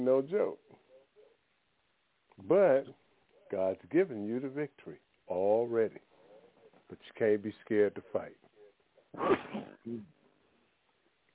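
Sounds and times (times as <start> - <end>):
speech: 0.0 - 0.6, 2.4 - 6.1, 6.9 - 8.5, 9.1 - 10.2
person sneezing: 9.2 - 10.2.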